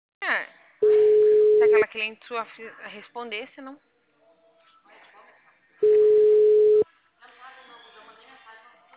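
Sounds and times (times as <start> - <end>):
steady mid-pitched telephone beep on an unanswered call: 0.8 - 1.8, 5.8 - 6.8
speech: 1.9 - 3.9.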